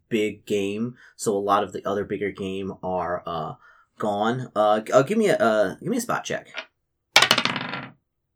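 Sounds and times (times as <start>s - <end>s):
speech: 0.1s - 6.7s
dice clattering across a hard table: 6.5s - 8.0s.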